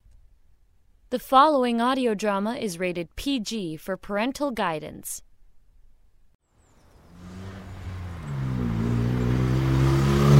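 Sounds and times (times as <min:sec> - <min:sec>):
speech: 0:01.1 - 0:05.3
car engine accelerating: 0:06.8 - 0:10.3.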